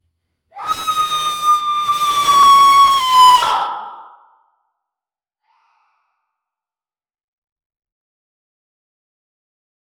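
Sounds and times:
paranormal ghost screaming: 0.6s - 4.2s.

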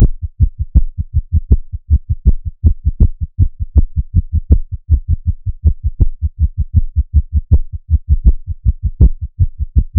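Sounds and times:
heartbeat: 0.0s - 9.9s.

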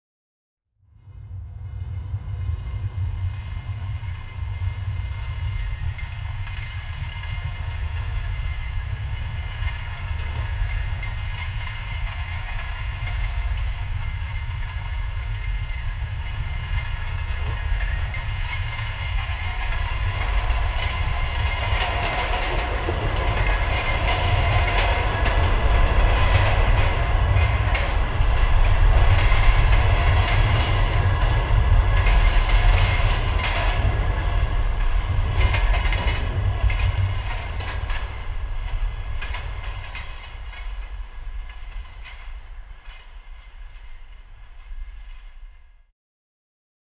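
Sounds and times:
rhythmic clatter: 3.7s - 44.9s.

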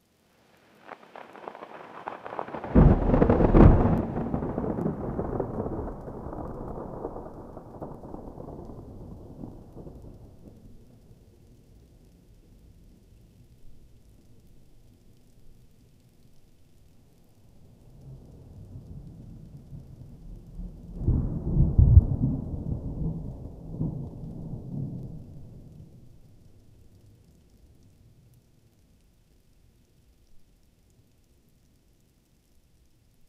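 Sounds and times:
warm resonant thunderclap: 1.0s - 10.8s, 18.9s - 25.8s.

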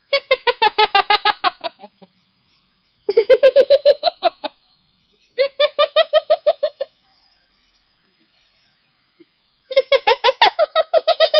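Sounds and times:
small monkey laughing: 0.0s - 2.1s, 3.1s - 4.6s, 5.4s - 7.0s, 9.7s - 11.3s.

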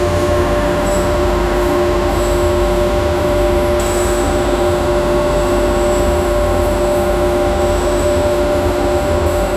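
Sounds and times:
industrial factory ambience: 0.0s - 9.5s.

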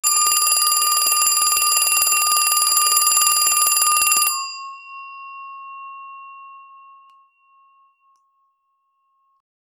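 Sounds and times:
doorbell ringing: 0.0s - 8.6s.

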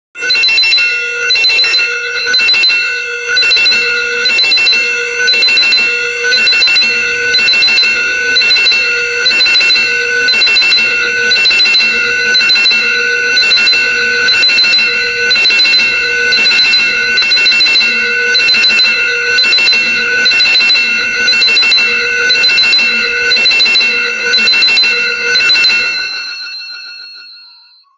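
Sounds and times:
fantasy bell ringing: 0.2s - 19.0s, 19.6s - 27.9s
alarms: 0.2s - 27.9s.

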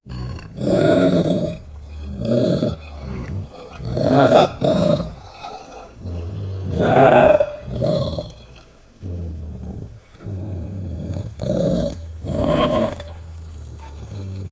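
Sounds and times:
ogre growling: 0.0s - 14.5s.

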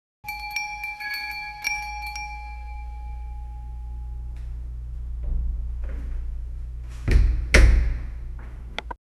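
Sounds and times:
door creaking open: 5.1s - 9.0s.

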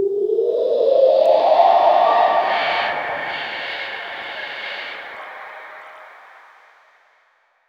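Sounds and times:
appearing sound effect: 0.2s - 6.9s.

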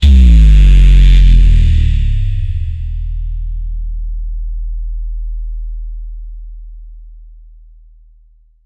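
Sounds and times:
ghatam bass hit: 0.0s - 4.1s.

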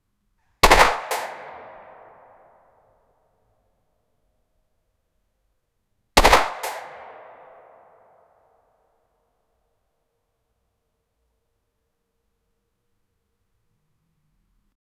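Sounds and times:
shotgun shot in a small room at close range: 0.6s - 2.3s, 6.2s - 7.9s.

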